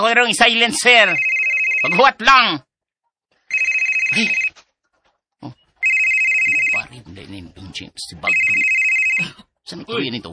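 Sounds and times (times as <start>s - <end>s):
speech: 0.0s - 2.7s, 4.1s - 4.4s, 7.2s - 10.3s
phone ringtone electronic trill: 1.0s - 2.2s, 3.5s - 4.6s, 5.8s - 6.9s, 8.2s - 9.3s.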